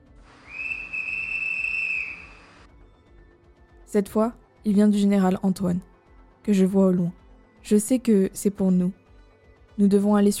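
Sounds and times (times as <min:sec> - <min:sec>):
shrill sustained whistle blast: 0:00.4 - 0:02.7
speech: 0:03.9 - 0:09.0, 0:09.8 - 0:10.3.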